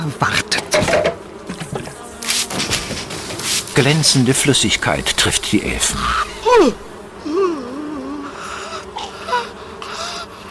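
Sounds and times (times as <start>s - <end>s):
speech: 0.0s - 1.0s, 3.8s - 6.9s
wasps buzzing: 0.0s - 10.4s.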